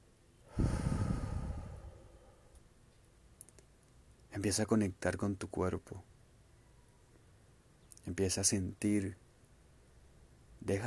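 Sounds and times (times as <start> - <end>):
slow exhale through the mouth during a guided breathing exercise: 0.5 - 2.6
speech: 4.4 - 6.1, 8.1 - 9.2, 10.6 - 10.8.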